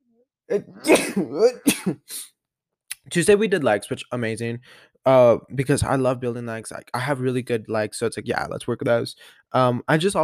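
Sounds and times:
loud sneeze fit with gasping breaths: 0:00.5 - 0:02.3
speech: 0:00.5 - 0:02.3, 0:03.1 - 0:10.2.

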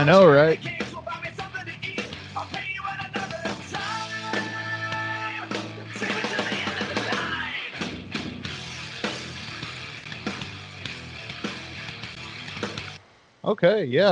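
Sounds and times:
speech: 0:00.0 - 0:00.8, 0:13.5 - 0:14.0
sung vocal holding a long note: 0:00.0 - 0:07.8
heavy distorted guitars in a nu metal and pop punk rock track: 0:00.0 - 0:13.0
pounding drums: 0:00.6 - 0:10.7.

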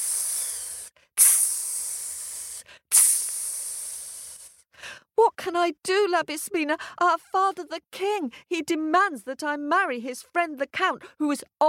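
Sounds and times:
voice imitating a snake hissing: 0:00.0 - 0:04.6
speech: 0:05.5 - 0:11.6.

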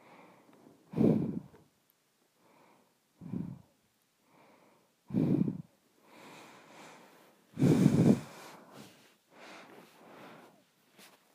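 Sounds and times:
loud low snorting nose inhales: 0:00.0 - 0:01.6, 0:03.2 - 0:03.7, 0:05.1 - 0:07.0, 0:07.6 - 0:10.6
soft nose breathing: 0:00.0 - 0:01.7, 0:02.4 - 0:11.3.

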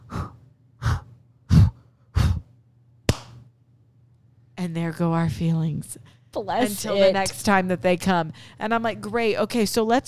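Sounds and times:
young boy doing balloon breathing: 0:00.0 - 0:02.5
speech: 0:04.6 - 0:10.0.

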